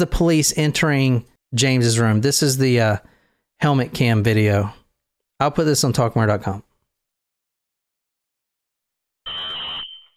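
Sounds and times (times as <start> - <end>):
speech: 0.0 - 4.8, 5.4 - 6.7
fire alarm blaring a high-pitched electronic tone: 9.2 - 10.1.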